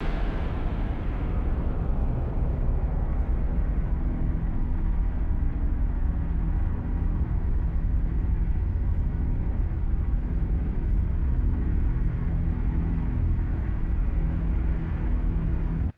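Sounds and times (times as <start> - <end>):
designed low frequency engine rumble: 0.0 - 15.9.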